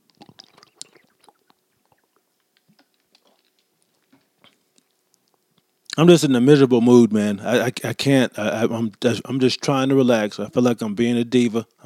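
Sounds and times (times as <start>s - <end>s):
small slurping sounds: 0.0s - 5.4s
person sipping water: 0.0s - 5.5s
quiet wet mouth clicks: 0.0s - 6.0s
speech: 6.0s - 11.8s.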